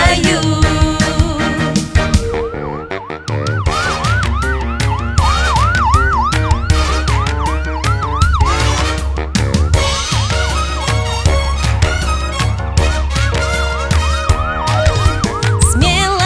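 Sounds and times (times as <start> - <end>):
upbeat music track with a steady thumping beat: 0.0 - 2.6, 3.2 - 16.2
ambulance siren wailing: 1.8 - 10.0, 13.6 - 16.2.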